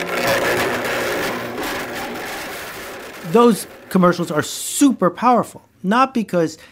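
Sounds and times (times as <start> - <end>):
blender running, grinding hard objects: 0.0 - 5.0
speech: 3.3 - 6.6.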